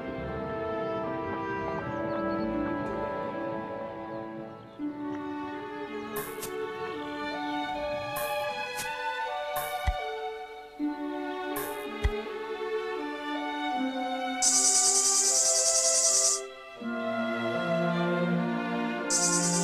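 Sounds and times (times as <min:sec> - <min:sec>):
gentle tuneful instrumental music: 0:00.0 - 0:19.6
tree cricket trilling on a branch: 0:14.4 - 0:16.5, 0:19.1 - 0:19.6.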